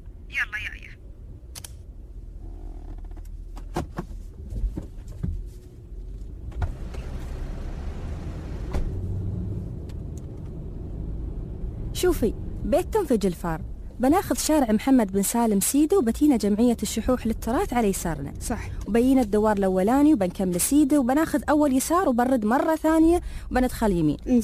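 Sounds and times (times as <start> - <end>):
car engine starting: 1.2 - 20.6
speech: 12.0 - 24.4.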